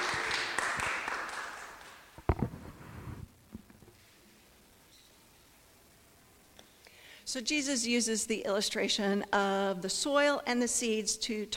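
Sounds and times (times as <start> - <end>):
audience applause after a Bible reading: 0.0 - 2.1
shuffling sounds: 2.2 - 4.4
speech: 7.3 - 11.5.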